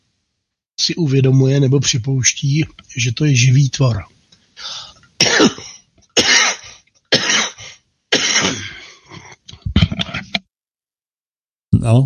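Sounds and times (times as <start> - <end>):
speech: 0.8 - 4.8
heavy chesty coughing: 4.6 - 9.5.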